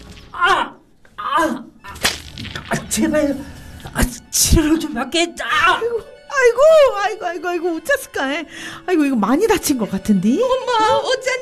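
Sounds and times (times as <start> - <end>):
person crying out in pain from being struck: 0.3 - 2.0, 5.4 - 6.1
whip lashes: 1.9 - 2.8
speech: 2.9 - 11.4.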